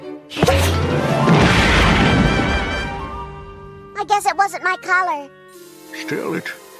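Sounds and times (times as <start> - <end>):
cartoon explosion from a booby-trapped lipstick tube: 0.4 - 3.4
speech: 4.1 - 6.6.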